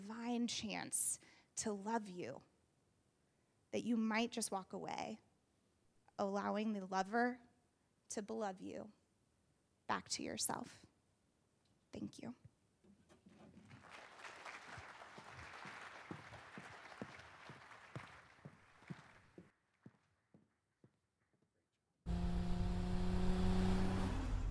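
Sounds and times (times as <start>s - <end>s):
speech: 0.0s - 2.5s, 3.7s - 5.3s, 6.2s - 7.5s, 8.1s - 9.0s, 9.9s - 10.9s, 11.9s - 12.4s
car engine roaring in a TV ad: 22.1s - 24.4s.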